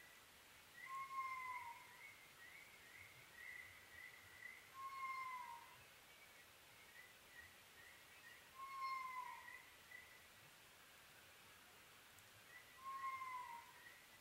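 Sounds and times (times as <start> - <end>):
constant hiss of background noise: 0.0 - 14.2
Oriental scops owl calling with low hooted notes at night: 0.8 - 2.0, 4.7 - 5.8, 8.5 - 9.7, 12.8 - 13.9.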